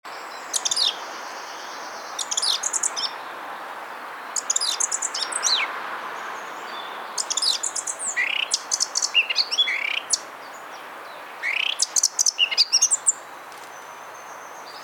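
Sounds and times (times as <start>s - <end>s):
background hiss: 0.1s - 14.8s
Eurasian blackcap singing: 0.4s - 3.2s, 4.4s - 5.7s, 6.7s - 10.2s, 11.4s - 13.2s.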